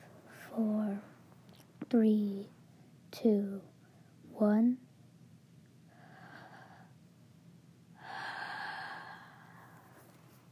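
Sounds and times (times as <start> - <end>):
speech: 0.5 - 1.1, 1.9 - 2.6, 3.2 - 3.7, 4.4 - 4.8
deep breath drawn in through the mouth: 8.0 - 10.0.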